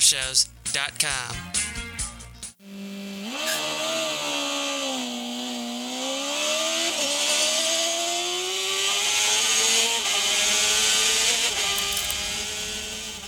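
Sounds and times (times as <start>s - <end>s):
speech: 0.1s - 1.6s
MotoGP racing motorcycle engine revving past: 2.7s - 13.2s.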